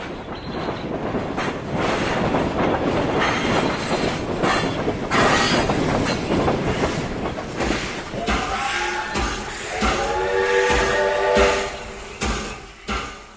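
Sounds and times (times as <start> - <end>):
train locomotive slowing down with rolling wagons: 0.0 - 13.3.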